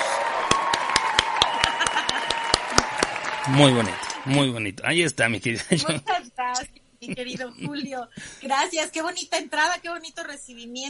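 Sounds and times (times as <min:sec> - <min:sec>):
applause sound effect from an app welcoming a guest: 0:00.0 - 0:04.6
faint continuous hum: 0:00.2 - 0:10.8
laughter: 0:01.3 - 0:04.1, 0:05.5 - 0:06.3
speech: 0:03.4 - 0:10.8.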